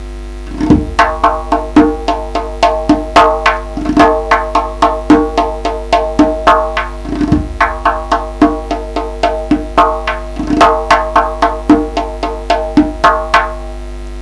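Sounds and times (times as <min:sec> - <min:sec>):
twelve beat rhythm played on pelangs: 0:00.5 - 0:13.8.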